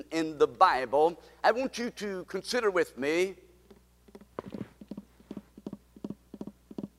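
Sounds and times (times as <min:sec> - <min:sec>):
speech: 0:00.2 - 0:03.4
horses galloping with hooves clip-clopping: 0:04.1 - 0:06.9.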